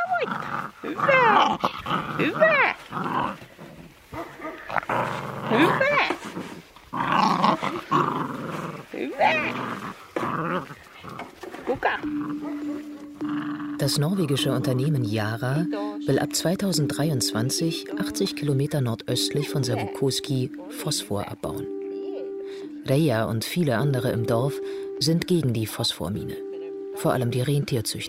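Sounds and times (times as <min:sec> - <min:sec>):
sixteen husky puppies growling, yipping and whining: 0:00.0 - 0:13.9
speech: 0:00.2 - 0:03.4, 0:13.8 - 0:21.8, 0:22.9 - 0:26.4, 0:27.0 - 0:28.0
steady tone: 0:12.0 - 0:28.0.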